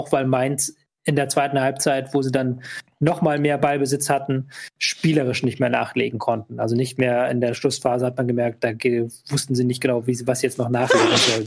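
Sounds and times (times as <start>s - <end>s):
speech: 0.0s - 11.4s
sneeze: 10.8s - 11.4s.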